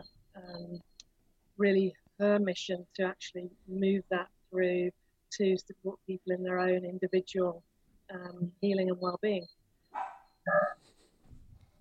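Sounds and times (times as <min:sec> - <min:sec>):
speech: 0:01.6 - 0:11.0
single sharp dog bark: 0:09.9 - 0:10.3.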